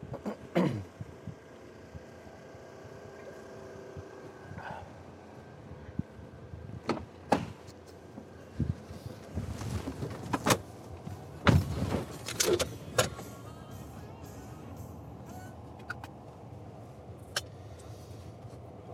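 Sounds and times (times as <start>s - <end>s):
steady low car cabin rumble: 0.0s - 18.9s
speech: 0.6s - 0.9s
car door clicks and thumps: 6.8s - 7.8s, 9.9s - 13.2s.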